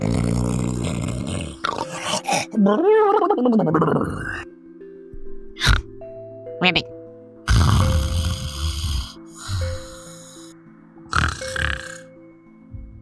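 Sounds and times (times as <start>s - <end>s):
person snoring: 0.0s - 2.7s, 5.6s - 5.9s, 7.5s - 12.2s
speech: 2.5s - 4.5s, 6.6s - 6.9s.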